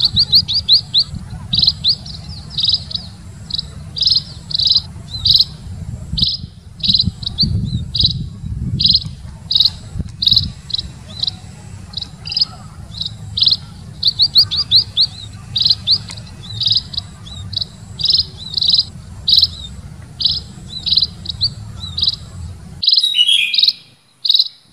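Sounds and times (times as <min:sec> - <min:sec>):
munia giving high buzzy chirps: 0:00.0 - 0:24.7.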